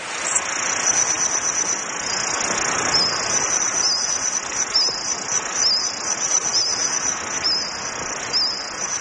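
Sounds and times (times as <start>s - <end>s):
reconstructed chirping of Jurassic insects in a forest: 0.0s - 8.9s.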